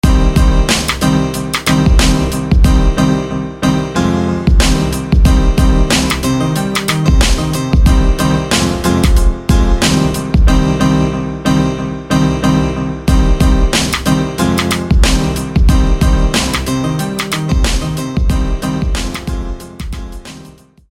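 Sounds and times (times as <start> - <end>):
piano: 0.0 - 20.9.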